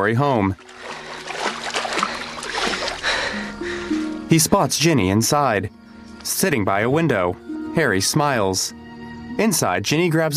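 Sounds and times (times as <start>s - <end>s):
speech: 0.0s - 0.9s, 4.3s - 8.8s, 9.4s - 10.3s
footsteps sloshing through ankle-high water: 0.5s - 3.4s.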